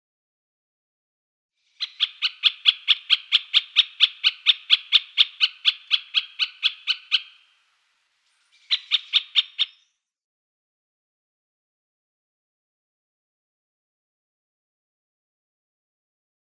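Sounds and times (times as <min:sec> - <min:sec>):
great spotted woodpecker clicking calls: 0:01.8 - 0:09.9.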